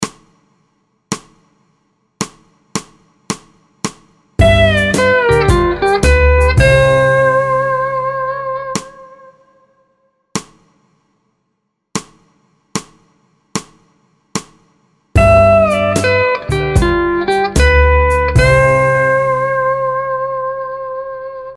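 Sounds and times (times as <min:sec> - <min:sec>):
musical vamp in C in four four time: 0:04.4 - 0:09.1, 0:15.2 - 0:20.9.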